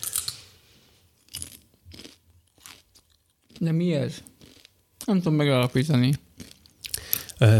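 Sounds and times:
person chewing crunchy celery root parsnip and beetroot chips with sea salt: 0:01.2 - 0:05.3, 0:06.2 - 0:07.4
speech: 0:03.6 - 0:04.3, 0:05.1 - 0:06.2, 0:07.4 - 0:07.5.

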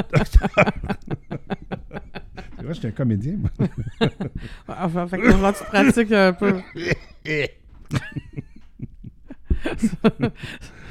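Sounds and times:
speech: 0:00.0 - 0:01.0, 0:02.7 - 0:07.6, 0:09.8 - 0:10.6
laughter: 0:00.0 - 0:10.7
person giving exaggerated performed coughs: 0:05.2 - 0:07.6.

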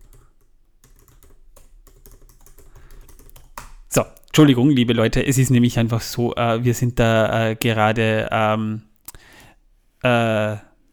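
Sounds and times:
fast typing on a computer keyboard: 0:00.0 - 0:04.3
speech: 0:03.9 - 0:08.9, 0:10.0 - 0:10.9.

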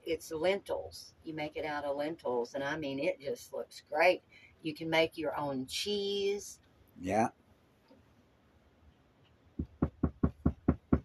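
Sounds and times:
speech: 0:00.1 - 0:07.4
firm knocks on a door: 0:09.6 - 0:11.0.

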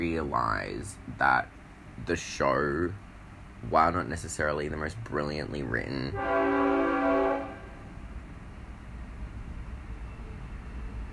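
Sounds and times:
speech: 0:00.0 - 0:03.0, 0:03.6 - 0:06.9
passing train rumbling: 0:03.0 - 0:11.1
train horn blaring: 0:06.0 - 0:08.0.

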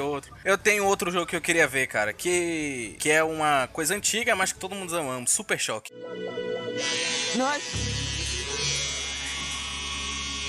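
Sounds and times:
speech: 0:00.0 - 0:08.0
electric shaver buzzing: 0:06.8 - 0:10.4.

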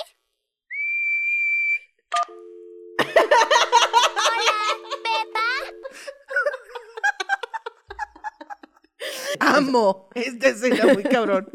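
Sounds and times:
person whistling a single note with pursed lips: 0:00.7 - 0:01.9
laughter: 0:03.0 - 0:09.4, 0:10.7 - 0:11.5
speech: 0:09.6 - 0:11.5.

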